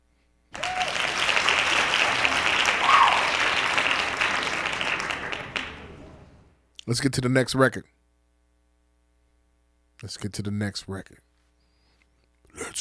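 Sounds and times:
crowd of hands clapping: 0.5s - 6.4s
speech: 6.9s - 8.0s, 10.0s - 11.3s.

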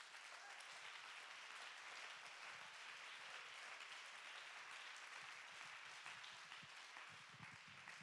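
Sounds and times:
audience clapping hands in praise: 0.0s - 8.0s.

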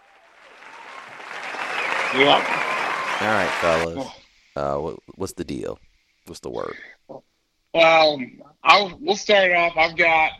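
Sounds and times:
crowd applause: 0.0s - 4.0s
speech: 2.1s - 2.6s, 3.2s - 10.3s.

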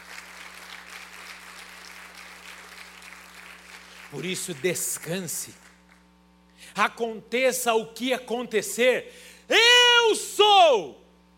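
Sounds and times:
audience applauding: 0.0s - 6.0s
low steady hum: 0.0s - 11.3s
speech: 4.1s - 5.7s, 6.7s - 11.0s.

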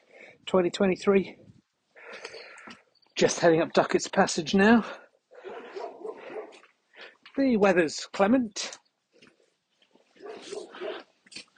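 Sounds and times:
speech: 0.4s - 1.4s, 3.2s - 5.0s, 7.4s - 8.8s
dog barking from inside a house: 5.4s - 6.6s, 10.2s - 11.1s.

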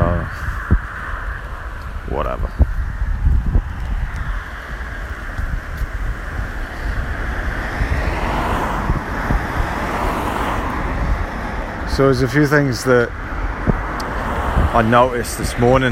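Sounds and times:
strong wind roaring outdoors on a warm wet day: 0.0s - 15.9s
speech: 2.1s - 2.8s, 12.0s - 13.3s, 14.8s - 15.9s.

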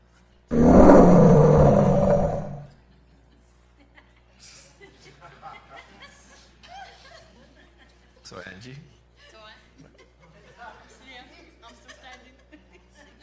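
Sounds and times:
lion roaring: 0.5s - 2.7s.

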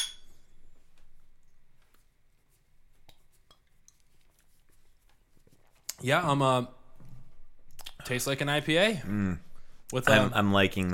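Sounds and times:
beer glasses clinking in a toast: 0.0s - 0.5s
speech: 6.0s - 6.8s, 8.1s - 10.9s.

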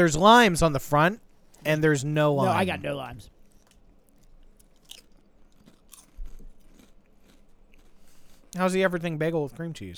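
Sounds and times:
speech: 0.0s - 3.3s, 8.6s - 9.9s
chewing crunchy kettle-cooked potato chips: 3.5s - 8.6s.

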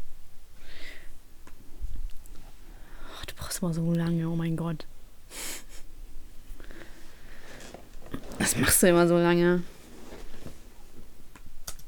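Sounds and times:
low room hum: 0.0s - 11.8s
speech: 3.6s - 5.0s, 8.5s - 9.8s
computer keyboard clicks: 11.4s - 11.8s.

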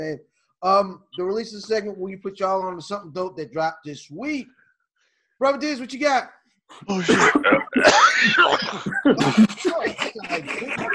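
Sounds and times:
speech: 0.0s - 4.6s, 5.4s - 10.9s
person coughing in harsh raspy bursts: 6.9s - 10.9s
laughter-like sounds: 7.1s - 10.9s.

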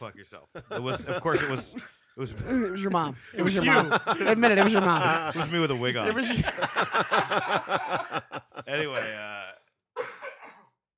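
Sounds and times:
speech: 0.0s - 9.6s
laughter: 0.6s - 1.8s, 3.4s - 9.5s
person coughing: 1.2s - 2.0s, 9.0s - 9.4s, 10.0s - 10.8s
person clearing throat: 8.9s - 10.8s.

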